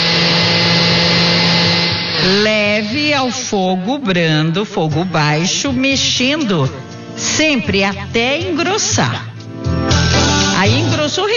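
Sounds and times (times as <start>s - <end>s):
blender mixing condensed milk, milk, egg yolks and vanilla: 0.0s - 3.8s
speech: 3.2s - 9.3s, 10.6s - 11.3s.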